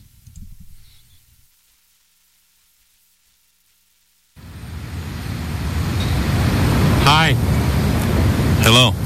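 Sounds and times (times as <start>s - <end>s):
bus engine rumble: 4.4s - 9.0s
roaring road noise of an approaching bus: 4.4s - 9.0s.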